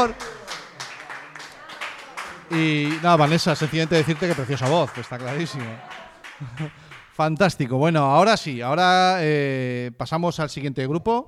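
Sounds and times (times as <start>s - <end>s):
speech: 0.0s - 0.4s, 2.5s - 11.2s
laughter: 0.0s - 7.1s
applause from a group: 0.0s - 7.7s.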